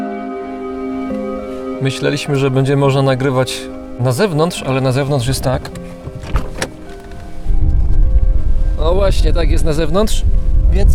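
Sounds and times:
strong wind buffeting through opened car window: 0:00.4 - 0:10.9
car power window motor whirring down: 0:00.7 - 0:07.5
speech: 0:01.8 - 0:06.0, 0:09.1 - 0:10.9.

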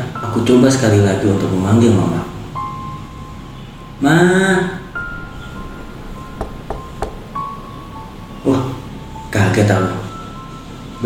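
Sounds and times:
speech: 0:00.4 - 0:02.3, 0:04.0 - 0:04.8, 0:09.6 - 0:10.0
knocking on a bathroom door: 0:06.4 - 0:07.4.

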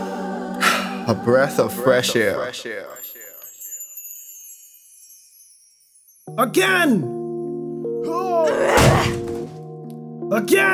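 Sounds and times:
speech: 0:01.1 - 0:03.0, 0:06.4 - 0:07.2, 0:10.3 - 0:10.7
battering ram thudding against a door: 0:08.5 - 0:09.6.

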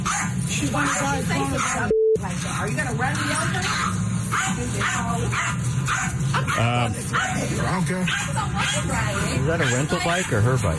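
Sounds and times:
dog barking and yipping: 0:00.0 - 0:01.9, 0:03.2 - 0:10.6
steady hum: 0:00.0 - 0:10.7
speech: 0:00.6 - 0:10.7.

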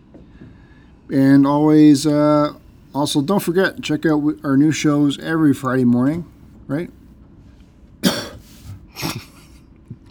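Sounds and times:
speech: 0:01.1 - 0:07.0
deliberate fake coughs: 0:08.0 - 0:09.5.

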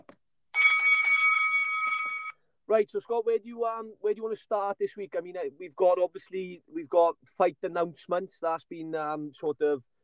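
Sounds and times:
bell struck with bright metallic tone: 0:00.6 - 0:02.4
speech: 0:02.7 - 0:09.9.

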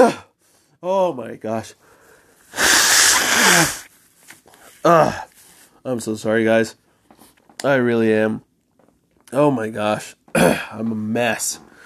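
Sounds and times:
speech: 0:00.0 - 0:00.2, 0:00.8 - 0:01.9, 0:02.5 - 0:02.8, 0:03.4 - 0:03.9, 0:04.8 - 0:06.8, 0:07.6 - 0:08.5, 0:09.3 - 0:11.7
person sneezing: 0:00.0 - 0:00.3, 0:02.5 - 0:03.9, 0:04.9 - 0:05.3.

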